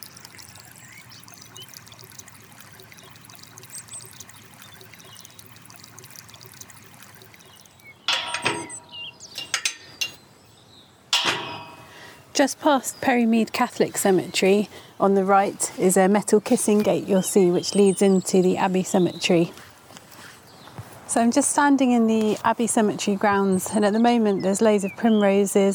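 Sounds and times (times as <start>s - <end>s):
water splashing: 0.0s - 10.2s, 11.2s - 12.6s
natural spring water trickling out of a limestone hillside in Bath: 0.0s - 25.4s
speech: 12.4s - 19.7s, 21.2s - 25.7s.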